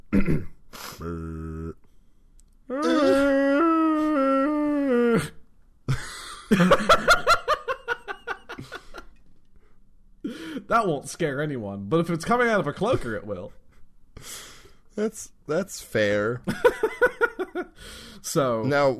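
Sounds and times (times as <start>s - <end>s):
speech: 0.2s - 1.6s, 6.5s - 7.0s, 10.7s - 13.6s, 15.0s - 16.9s, 17.8s - 18.9s
human voice imitating a ghostly moan: 1.0s - 1.8s, 2.7s - 5.4s
laughter: 5.9s - 9.2s, 16.5s - 17.8s.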